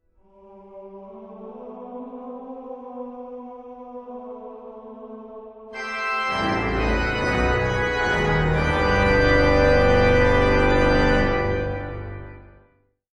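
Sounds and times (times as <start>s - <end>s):
electronic organ: 5.8s - 12.7s.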